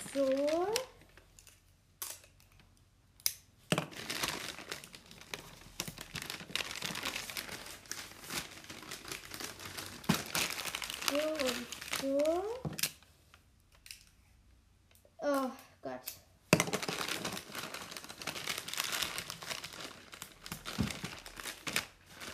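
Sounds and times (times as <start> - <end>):
speech: 0.2 - 0.8
paper crinkling while being folded to wrap something: 3.9 - 12.6, 16.7 - 22.3.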